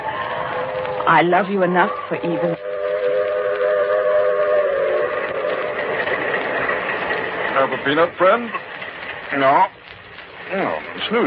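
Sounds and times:
passenger train rolling along the tracks: 0:00.0 - 0:11.2
sustained whistle-like tone: 0:00.1 - 0:05.8
speech: 0:01.1 - 0:02.7, 0:07.6 - 0:08.6, 0:09.3 - 0:09.8, 0:10.5 - 0:11.2.

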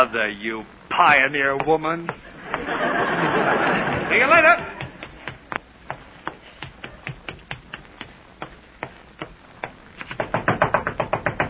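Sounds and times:
speech: 0:00.0 - 0:04.8
laughter: 0:02.2 - 0:05.0
knocking on a bedroom door: 0:09.6 - 0:11.4.

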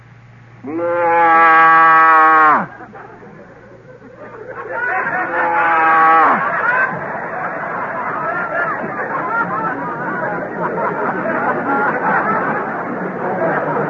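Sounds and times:
faint noise: 0:00.0 - 0:13.8
man's voice imitating a Holstein cow mooing: 0:00.6 - 0:02.7
laughter: 0:02.0 - 0:13.8.

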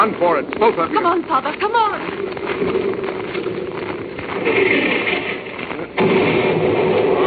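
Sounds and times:
speech: 0:00.0 - 0:03.1
artillery shelling near a ship: 0:04.1 - 0:07.2.

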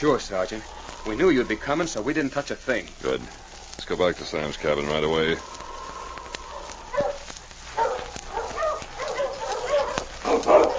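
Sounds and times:
speech: 0:00.0 - 0:05.6
team of sled dogs barking and yipping in an excited chorus: 0:06.2 - 0:10.7.

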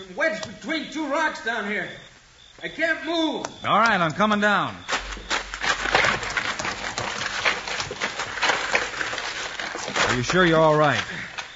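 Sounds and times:
speech: 0:00.1 - 0:04.9, 0:10.2 - 0:11.2
horse hooves clattering in a gallop: 0:02.6 - 0:11.5.

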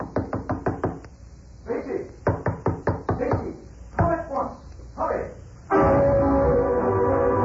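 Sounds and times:
loud knocking on a door at night: 0:00.0 - 0:01.0, 0:02.2 - 0:04.2
steady rushing noise: 0:05.7 - 0:07.4.

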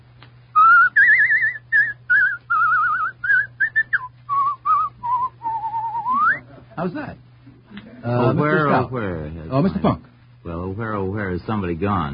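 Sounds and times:
faint steady low hum: 0:00.0 - 0:12.1
person whistling a lively tune: 0:00.6 - 0:06.4
speech: 0:06.8 - 0:07.3, 0:08.0 - 0:12.1.

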